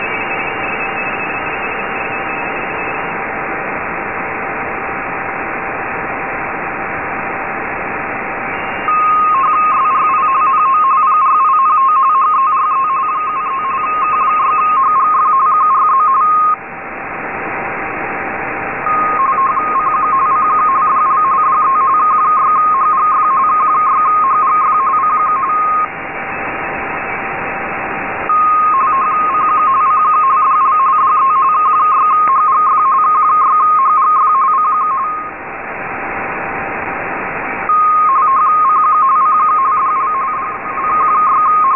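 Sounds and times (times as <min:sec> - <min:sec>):
RTTY radioteletype signal tones at 2000Hz: 0:00.0 - 0:41.7.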